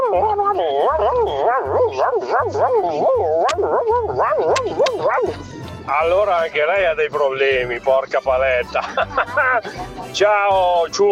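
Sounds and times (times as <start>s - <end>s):
Labrador dog whimpering and yipping while sleeping restlessly: 0.0s - 5.4s
speech: 0.1s - 11.1s
laughter: 8.1s - 10.3s.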